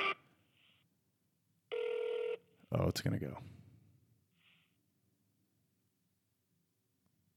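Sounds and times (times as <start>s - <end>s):
telephone line ringback tone while a call to a crisis counselor line is placed: 1.7s - 2.4s
speech: 2.7s - 3.6s.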